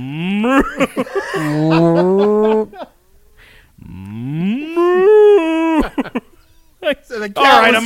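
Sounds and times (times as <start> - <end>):
person imitating cow mooing: 0.0 - 0.8, 1.4 - 2.8, 3.8 - 5.9
speech: 0.0 - 3.0, 7.2 - 7.8
laughter: 0.4 - 3.0, 4.8 - 6.4.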